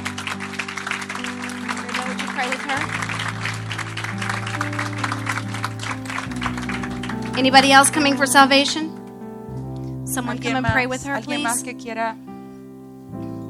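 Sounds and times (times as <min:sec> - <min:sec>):
audience applause at a church service: 0:00.0 - 0:08.0
organ-like musical drone: 0:00.0 - 0:13.4
speech: 0:02.4 - 0:03.0, 0:07.4 - 0:08.9, 0:10.1 - 0:12.3.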